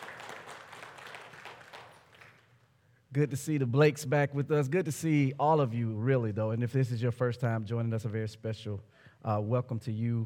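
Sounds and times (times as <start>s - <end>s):
church congregation clapping hands in praise during a worship service: 0.0s - 2.7s
speech: 3.1s - 10.2s.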